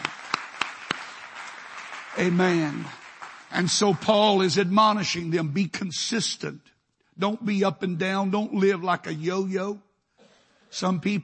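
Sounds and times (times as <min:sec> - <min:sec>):
audience clapping hands in praise to the Lord: 0:00.0 - 0:05.3
speech: 0:02.2 - 0:09.9, 0:10.7 - 0:11.2.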